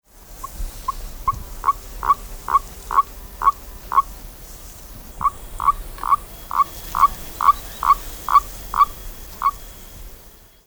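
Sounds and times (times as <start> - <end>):
common toad mating calls: 0.3 - 10.4.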